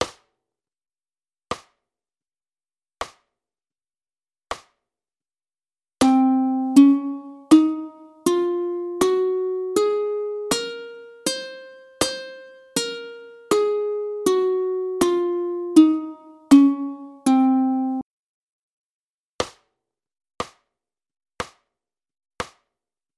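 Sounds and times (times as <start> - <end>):
ukulele playing a Locrian scale: 6.0 - 18.0.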